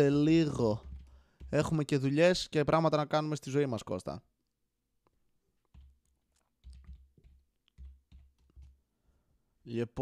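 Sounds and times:
speech: 0.0 - 4.3, 9.6 - 9.9
typing on a computer keyboard: 0.7 - 1.7, 5.6 - 8.8.

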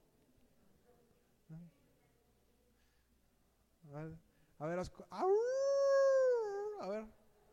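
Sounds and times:
speech: 3.9 - 5.6, 6.8 - 7.2
person howling like a wolf: 5.2 - 7.0.

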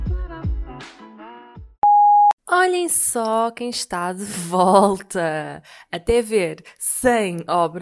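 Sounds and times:
voicemail electronic beep: 1.8 - 2.4
speech: 2.6 - 7.8.

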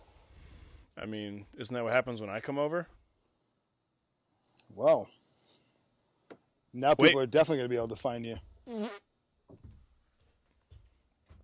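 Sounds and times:
speech: 1.0 - 3.0, 4.8 - 5.2, 6.8 - 9.0
fart: 8.7 - 9.1.

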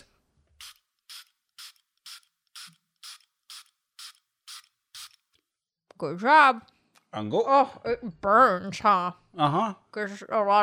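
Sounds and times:
pump spray bottle of homeopathic spray sprayed under a man's tongue: 0.6 - 5.3
speech: 6.0 - 10.6.

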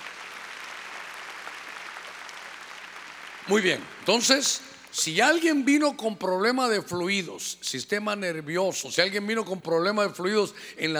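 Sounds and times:
large audience clapping loudly: 0.0 - 4.4
speech: 3.5 - 10.9.

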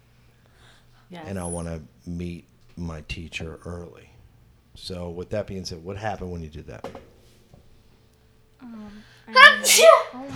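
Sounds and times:
speech: 1.1 - 4.1, 4.8 - 7.1, 8.6 - 10.3
loud sneeze: 9.4 - 10.2.

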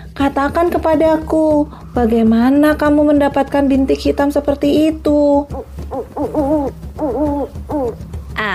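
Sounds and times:
speech: 0.2 - 6.8
snowy owl hooting: 5.5 - 8.1.

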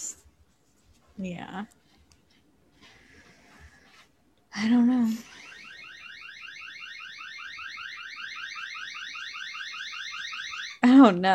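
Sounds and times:
speech: 1.2 - 1.8, 4.6 - 5.4, 11.0 - 11.3
wake-up alarm with high electronic beeps: 5.0 - 10.8.

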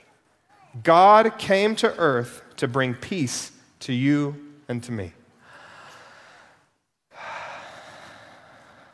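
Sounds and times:
speech: 0.8 - 5.2
group of people taking a big deep breath together: 5.4 - 8.9.

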